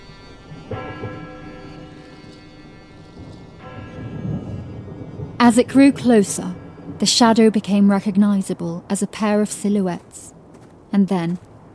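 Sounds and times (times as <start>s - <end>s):
town bell in Anvers tolling: 0.0s - 7.7s
low rumbling backdrop: 0.0s - 11.7s
speech: 5.5s - 10.3s, 10.9s - 11.7s.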